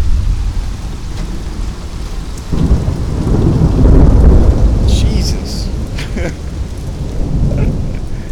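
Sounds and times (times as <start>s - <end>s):
deep roll of thunder: 0.0s - 8.3s
steady rain hissing: 0.0s - 8.3s
man exclaiming: 4.8s - 6.4s
laughter: 5.3s - 6.6s, 7.4s - 8.1s.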